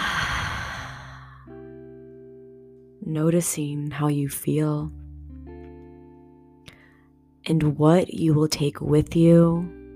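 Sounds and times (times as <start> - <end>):
person exhaling audibly after a deep inhale during guided relaxation: 0.0 - 1.5
speech: 3.0 - 5.0, 7.5 - 9.8.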